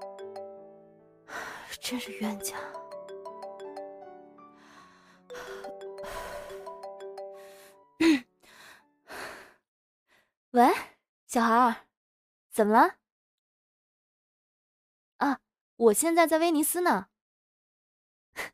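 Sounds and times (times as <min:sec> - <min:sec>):
melodic phone ringtone: 0:00.0 - 0:08.3
person sighing and gasping: 0:01.3 - 0:01.8, 0:04.5 - 0:09.6
speech: 0:01.8 - 0:02.8, 0:11.3 - 0:11.8, 0:12.6 - 0:13.0, 0:15.2 - 0:17.1.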